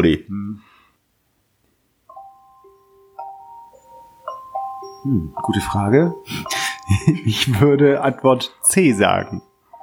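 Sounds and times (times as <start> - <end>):
speech: 0.0 - 0.7, 5.0 - 9.5
electronic phone ringtone through a small speaker: 2.1 - 7.4, 9.2 - 9.8
laughter: 6.6 - 7.7.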